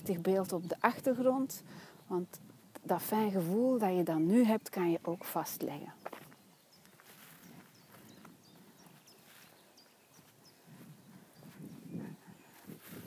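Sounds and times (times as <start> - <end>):
speech: 0.0 - 6.2
footsteps crunching along an outdoor path: 5.6 - 13.0
faint bird chirps: 6.0 - 13.0.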